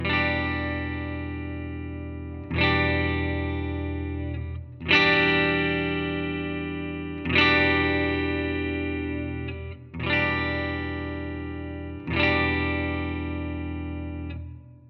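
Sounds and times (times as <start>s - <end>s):
electric guitar: 0.0s - 14.8s.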